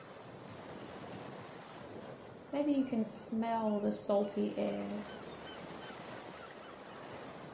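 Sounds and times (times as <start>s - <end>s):
ocean waves lapping on a shore: 0.0s - 7.5s
wind noise: 0.0s - 7.5s
speech: 2.5s - 5.2s
seagulls calling: 5.0s - 7.3s.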